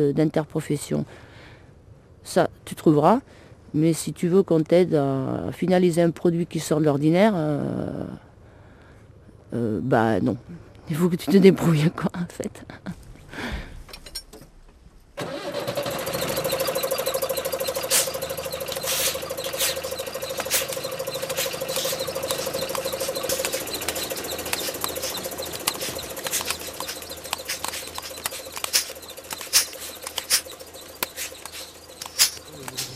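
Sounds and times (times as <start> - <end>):
speech: 0.0 - 1.3, 2.2 - 8.3, 9.5 - 13.6
compressor motor humming: 15.2 - 32.9
pneumatic pruning shears snipping: 17.8 - 32.9.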